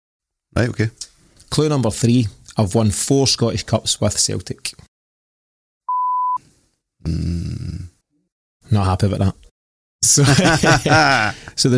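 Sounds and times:
speech: 0:00.5 - 0:04.9, 0:07.0 - 0:07.7, 0:08.7 - 0:09.4, 0:10.0 - 0:11.7
high-pitched censor beep cutting off speech: 0:05.9 - 0:06.4
drawn-out vocal groan: 0:07.0 - 0:08.0
laughter: 0:10.1 - 0:11.6.

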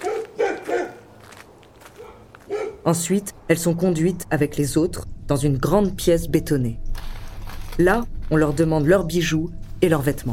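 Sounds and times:
guard dogs barking in short sharp bursts: 0:00.0 - 0:01.1, 0:01.9 - 0:02.9
speech: 0:02.8 - 0:06.8, 0:07.8 - 0:10.3.

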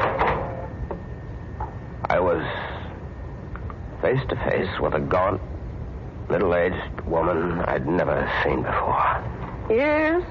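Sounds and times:
front door opening with a rustling rattle: 0:00.0 - 0:00.7
low rumble: 0:00.0 - 0:10.2
speech: 0:02.1 - 0:02.6, 0:04.0 - 0:05.5, 0:06.3 - 0:10.2.

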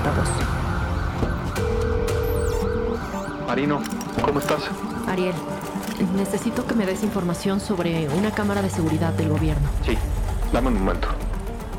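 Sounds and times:
ambulance siren wailing as the ambulance arrives: 0:00.0 - 0:06.5
speech: 0:03.5 - 0:11.2.

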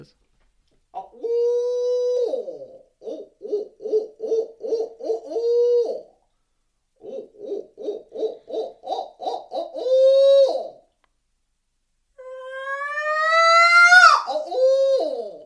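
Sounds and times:
owl-style hoots blown on a turkey hunting locator call: 0:01.0 - 0:06.2, 0:07.0 - 0:10.9, 0:12.2 - 0:15.4.

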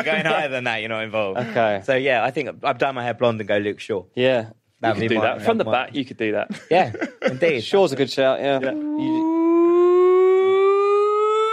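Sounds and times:
speech: 0:00.0 - 0:09.4
siren tone rising in pitch: 0:08.7 - 0:11.5.

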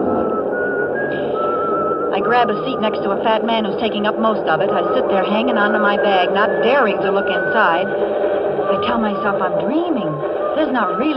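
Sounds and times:
person whistling a tune: 0:00.0 - 0:02.9, 0:04.8 - 0:09.0, 0:10.1 - 0:11.1
crowd noise: 0:00.0 - 0:11.1
vehicle noise: 0:00.0 - 0:11.1
speech: 0:02.2 - 0:11.1.

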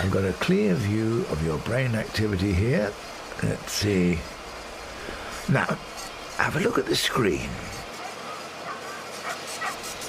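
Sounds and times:
speech: 0:00.0 - 0:04.4, 0:05.5 - 0:07.8
faint hiss: 0:00.0 - 0:09.4
puppies barking and yipping: 0:07.8 - 0:10.0.

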